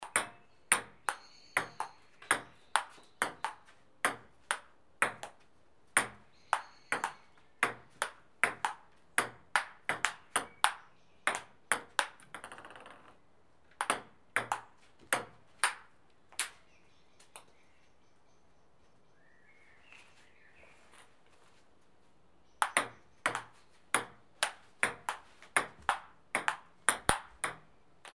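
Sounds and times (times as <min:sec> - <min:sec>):
ping pong ball bouncing in a ping pong match: 0:00.0 - 0:05.4, 0:06.0 - 0:16.6, 0:22.6 - 0:28.1.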